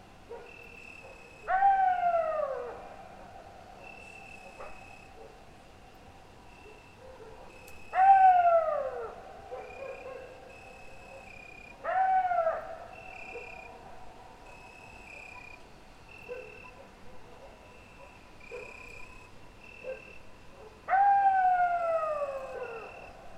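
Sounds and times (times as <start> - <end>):
crickets chirping in a pine forest at midnight: 0.0 - 23.3
coyote wailing calls in a pine forest at midnight: 1.4 - 3.0, 7.9 - 10.3, 11.4 - 13.7, 20.9 - 23.2.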